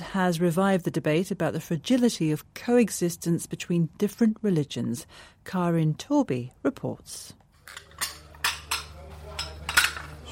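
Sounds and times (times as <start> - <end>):
speech: 0.1 - 7.8
kitchen plates and pans clinking in plastic boxes: 7.6 - 10.3.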